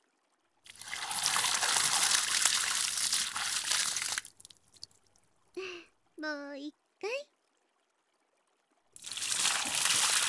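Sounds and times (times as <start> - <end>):
water rinsed over a body: 0.7 - 5.0, 9.0 - 10.2
speech: 6.2 - 7.2.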